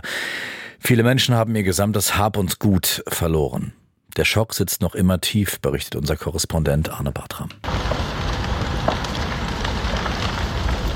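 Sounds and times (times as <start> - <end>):
speech: 0.9 - 8.0
wind-driven fire crackling with sharp pops: 7.6 - 10.9.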